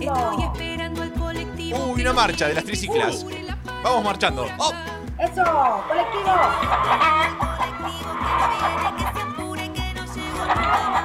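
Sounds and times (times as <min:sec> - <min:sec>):
bouncy upbeat musical backing with stepping bass notes: 0:00.0 - 0:11.0
speech: 0:01.7 - 0:09.3
hen clucking: 0:05.5 - 0:11.0.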